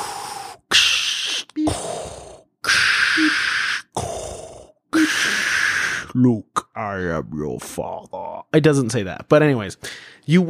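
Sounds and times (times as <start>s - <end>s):
voice imitating a hospital breathing machine: 0.0s - 6.2s
speech: 6.2s - 10.4s.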